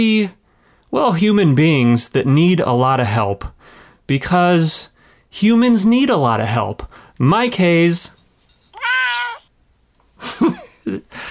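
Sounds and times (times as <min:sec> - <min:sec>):
speech: 0:00.0 - 0:08.2, 0:10.2 - 0:11.2
cat meowing: 0:08.7 - 0:09.5.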